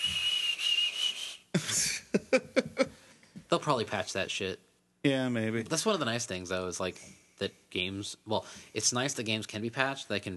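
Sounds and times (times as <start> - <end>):
video game character whistling a high note while running: 0.0 - 1.5
laughter: 1.6 - 2.9
speech: 3.5 - 10.3.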